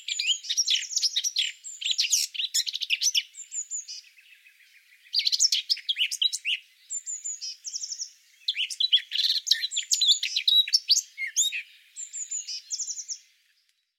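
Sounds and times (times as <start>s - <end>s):
Eurasian blackcap Sylvia atricapilla singing jumbled twittering with whistled notes: 0.0s - 13.9s.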